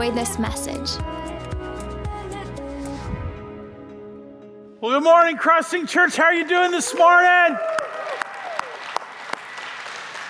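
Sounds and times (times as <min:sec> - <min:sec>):
speech: 0:00.0 - 0:01.3, 0:04.8 - 0:07.8
audience clapping: 0:06.6 - 0:10.2.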